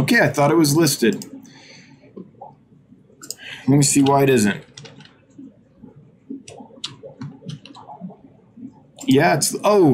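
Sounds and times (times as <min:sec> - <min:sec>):
speech: 0:00.1 - 0:01.3, 0:03.7 - 0:04.7, 0:09.1 - 0:09.9
computer mouse clicks while posting items in an online inventory: 0:01.1 - 0:01.4, 0:04.0 - 0:08.1.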